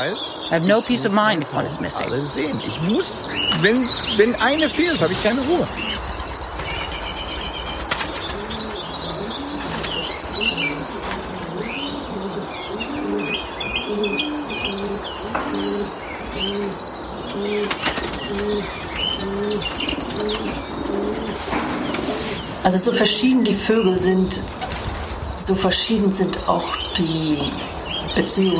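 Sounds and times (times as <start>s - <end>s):
speech: 0.0s - 6.1s, 22.8s - 24.6s, 25.5s - 28.5s
many pigeons cooing in a pigeon loft: 0.0s - 28.5s
other birds chirping: 0.0s - 28.5s
pigeon wings flapping: 2.3s - 12.4s, 17.3s - 26.2s.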